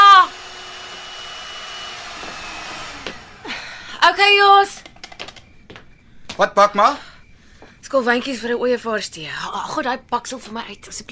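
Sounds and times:
electric kitchen mixer running: 0.0 - 3.7
speech: 4.2 - 4.8, 6.4 - 7.1, 7.9 - 11.1.

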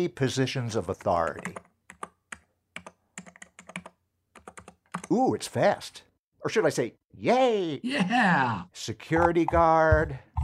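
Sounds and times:
speech: 0.0 - 1.6, 5.1 - 10.3
typing a search on a computer keyboard: 1.3 - 5.2.

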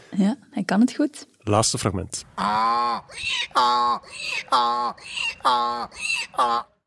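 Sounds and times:
speech: 0.2 - 6.7
man imitating donkey braying hee-haw: 2.4 - 6.8.

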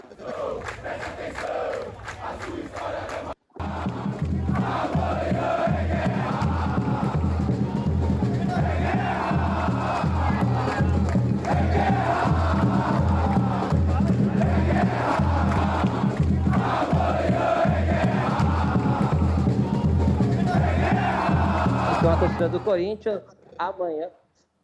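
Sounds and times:
football supporters chanting in unison in protest at a training centre gate in Brazil: 0.0 - 22.7
steady rhythmic pulse: 3.6 - 22.7.

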